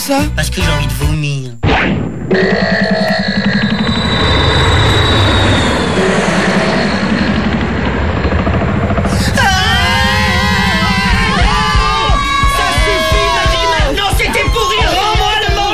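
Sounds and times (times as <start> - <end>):
speech: 0.1 - 3.0
rising whine: 2.2 - 15.6
airplane engine warming up: 3.1 - 13.8.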